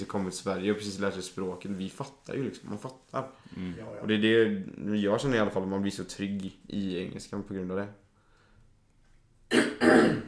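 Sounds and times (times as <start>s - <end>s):
speech: 0.0s - 8.0s
person clearing throat in short raspy bursts: 9.5s - 10.2s.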